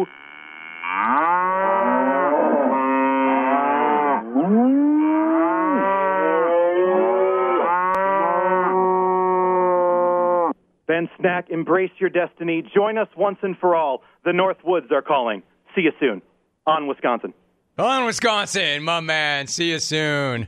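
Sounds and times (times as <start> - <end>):
several cows mooing: 0.0 - 10.6
speech: 10.9 - 20.4.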